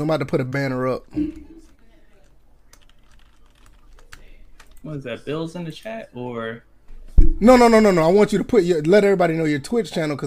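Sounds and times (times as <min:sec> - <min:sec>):
speech: 0:00.0 - 0:01.5, 0:04.8 - 0:06.7, 0:07.4 - 0:10.2
rapid typing on a computer keyboard: 0:02.7 - 0:04.8.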